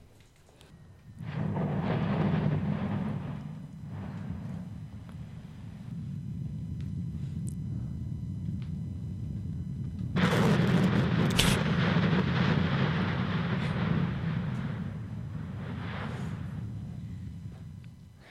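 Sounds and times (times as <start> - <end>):
Stromboli volcanic eruption rumbling and crackling: 0.8 - 18.2.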